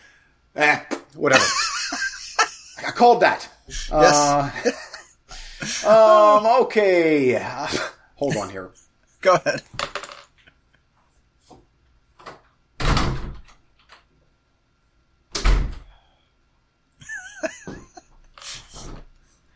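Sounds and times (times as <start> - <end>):
speech: 0.5 - 1.6, 3.0 - 4.8, 5.7 - 9.8
laughter: 1.3 - 3.0, 4.0 - 6.5, 7.6 - 9.7, 17.0 - 18.8
heavy thuds of doors being shut: 12.2 - 14.0, 15.3 - 15.9.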